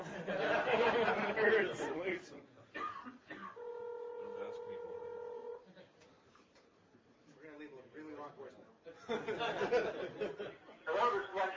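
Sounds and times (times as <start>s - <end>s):
laughter: 0.0s - 1.9s, 8.9s - 11.3s
chatter: 0.8s - 11.5s
speech: 1.4s - 3.2s, 8.3s - 11.5s
buzzy ringback tone from a phone on speakerphone: 3.6s - 5.6s.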